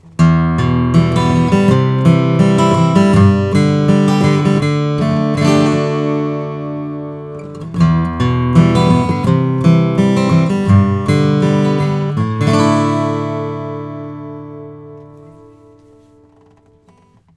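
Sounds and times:
Froggy Bottom H12 Deluxe rosewood acoustic guitar: 0.0 - 17.3.

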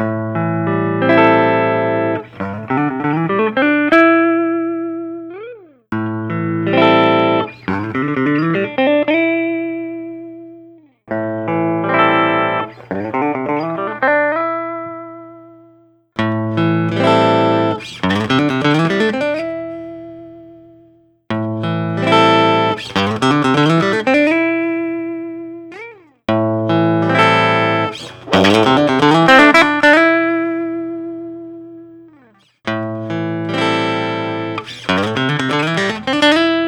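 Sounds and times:
electric guitar with MIDI pickup: 0.0 - 36.6.

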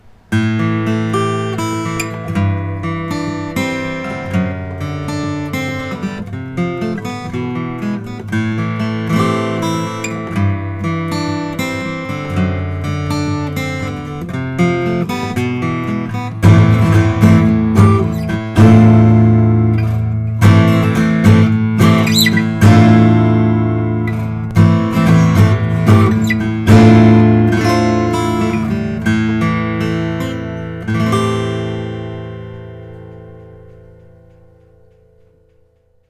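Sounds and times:
macassar ebony acoustic guitar: 0.0 - 36.0.

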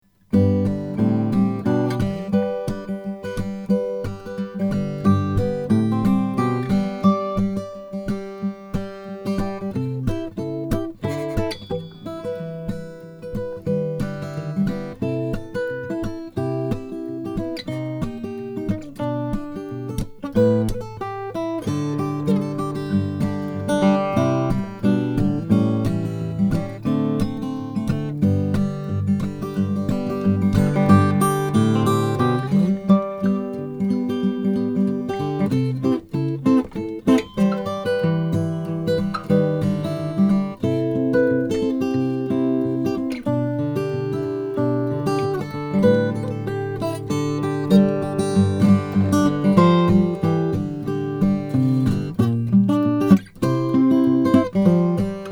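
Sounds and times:
Borges OM 28 Brazilian rosewood guitar: 0.0 - 55.3.

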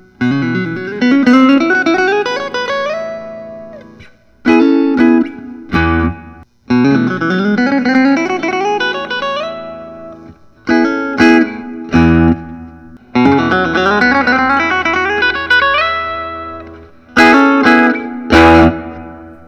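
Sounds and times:
mahogany electric guitar: 0.0 - 19.4.

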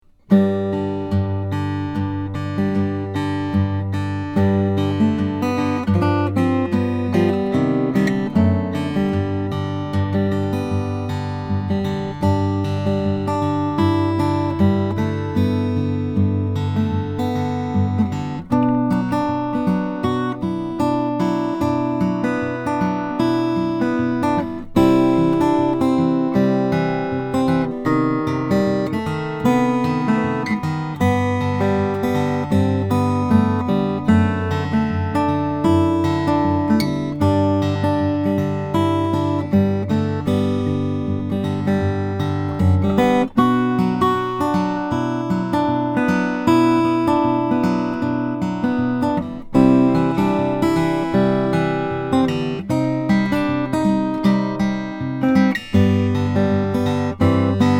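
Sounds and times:
mahogany cutaway guitar playing: 0.0 - 57.7.

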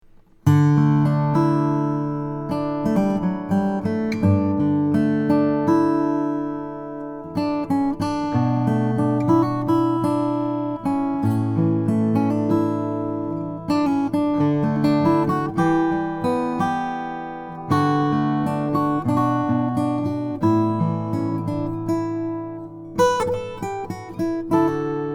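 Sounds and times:
acoustic guitar: 0.0 - 25.1.

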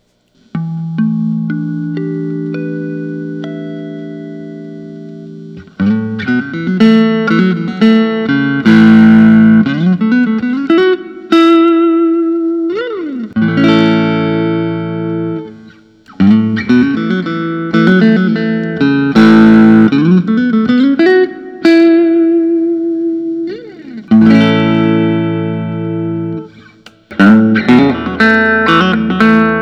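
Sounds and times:
Fender Custom Shop 59 Telecaster electric guitar: 0.1 - 29.6.

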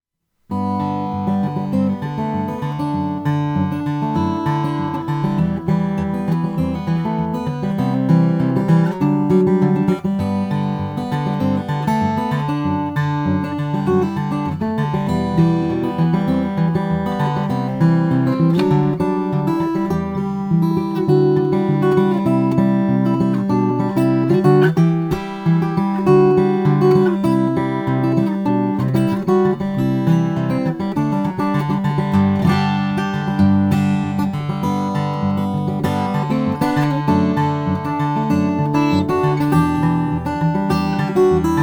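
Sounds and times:
carbon fiber acoustic guitar in sable black: 0.3 - 41.6.

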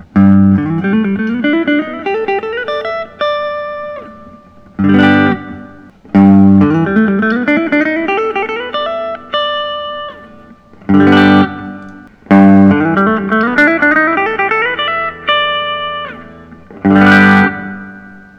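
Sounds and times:
Collings SoCo Deluxe Brazilian guitar: 0.0 - 18.3.

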